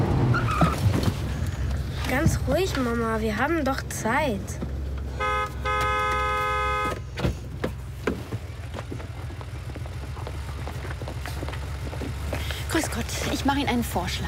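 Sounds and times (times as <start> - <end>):
low car engine idle rumbling: 0.9 - 14.2
speech: 2.2 - 4.6, 12.8 - 14.2
car horn honking: 5.1 - 7.2.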